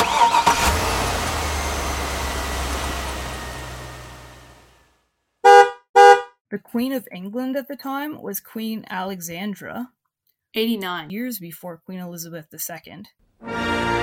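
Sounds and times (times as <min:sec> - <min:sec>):
car engine cranking and rumbling: 0:00.0 - 0:05.0
car horn honks: 0:05.4 - 0:06.3
speech: 0:06.7 - 0:14.0.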